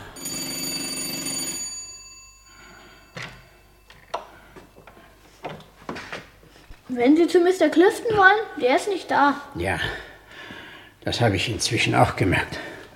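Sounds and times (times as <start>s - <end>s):
doorbell ringing: 0.0s - 5.4s
speech: 6.9s - 10.1s, 11.0s - 12.7s.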